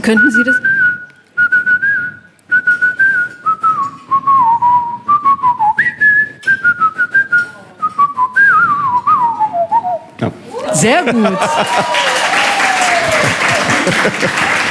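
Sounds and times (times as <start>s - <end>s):
speech: 0.0s - 0.7s, 10.8s - 12.2s, 13.8s - 14.7s
person whistling an improvised tune: 0.0s - 10.1s
laughter: 10.5s - 14.7s.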